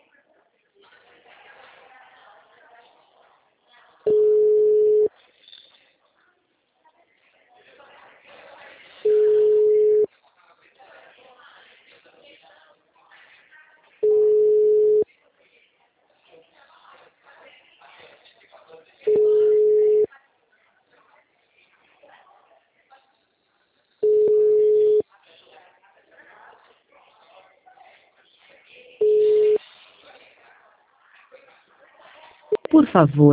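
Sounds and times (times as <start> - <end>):
loud steady telephone busy-signal tone beeps: 4.1 - 5.1, 9.1 - 10.1, 14.0 - 15.0, 19.1 - 20.1, 24.0 - 25.0, 29.0 - 29.6
recorded voice speaking: 32.6 - 33.3
speech: 32.7 - 33.3.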